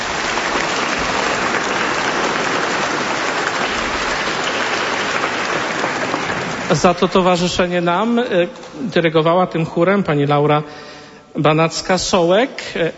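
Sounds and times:
applause for a parish passion choir: 0:00.0 - 0:07.5
speech: 0:06.7 - 0:12.9.

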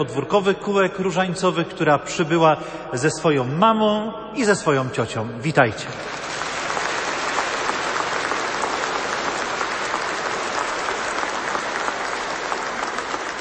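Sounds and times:
speech: 0:00.0 - 0:06.2
sustained applause from a sizable audience: 0:06.0 - 0:13.3.

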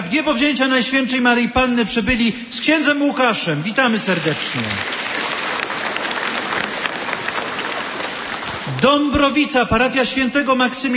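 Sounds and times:
speech: 0:00.1 - 0:05.0, 0:08.8 - 0:10.9
crowd applauding a parish group at a gathering: 0:03.7 - 0:09.4.

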